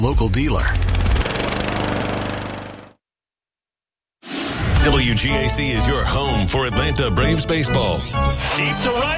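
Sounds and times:
speech: 0:00.0 - 0:01.0, 0:04.9 - 0:09.1
Gravely lawn mower engine roaring: 0:00.8 - 0:02.9.

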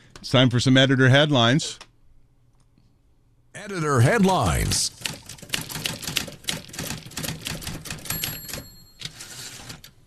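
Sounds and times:
speech: 0:00.2 - 0:01.9, 0:03.6 - 0:05.2
typewriter bell ring: 0:08.0 - 0:09.5.

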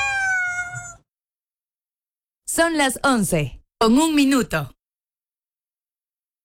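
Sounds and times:
cat meowing: 0:00.0 - 0:01.0
speech: 0:02.6 - 0:04.8.

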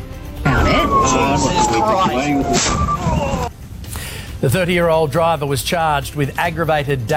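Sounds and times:
siren on a personal car with blue lights in Perth: 0:00.4 - 0:03.5
murmuring voices on a busy Perth street: 0:00.5 - 0:03.5
speech: 0:01.1 - 0:03.4, 0:04.4 - 0:07.1.

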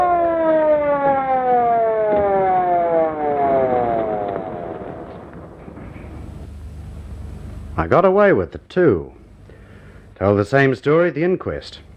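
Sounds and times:
loud ambulance siren wailing: 0:00.0 - 0:06.0
speech: 0:07.9 - 0:09.2, 0:10.2 - 0:11.9.

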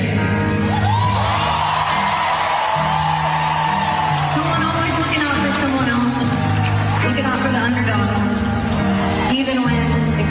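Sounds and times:
large arena crowd at a concert roaring and cheering: 0:00.2 - 0:10.2
whoops and yells: 0:00.7 - 0:07.4.

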